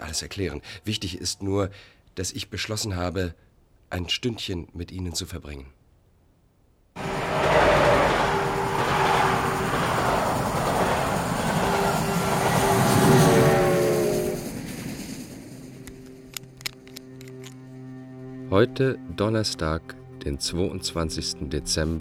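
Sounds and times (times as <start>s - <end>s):
speech: 0.1s - 5.8s, 18.5s - 21.9s
faint tonal hum: 7.0s - 21.9s
train rumbling on its run: 7.0s - 21.9s.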